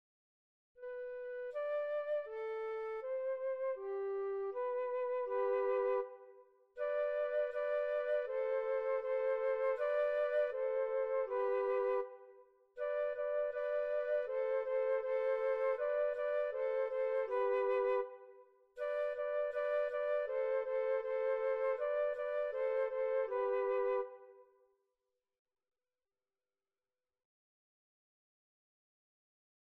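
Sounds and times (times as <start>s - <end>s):
flute playing a song and variation: 0.8s - 24.4s.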